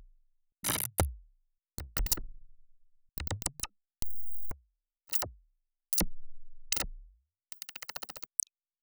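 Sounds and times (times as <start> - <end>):
digital effect squeaks: 0.6 - 1.1, 1.8 - 2.2, 3.2 - 4.6, 7.6 - 8.5.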